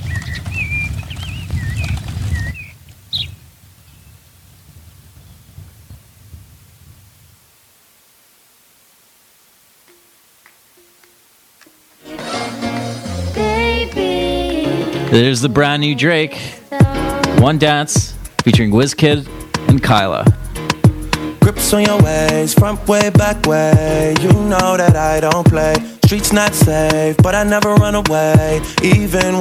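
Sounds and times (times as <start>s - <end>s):
birds chirping and whistling: 0.0s - 4.1s
loud music: 12.0s - 15.6s, 16.8s - 29.4s
speech: 15.1s - 16.6s, 17.4s - 20.4s, 21.6s - 29.4s.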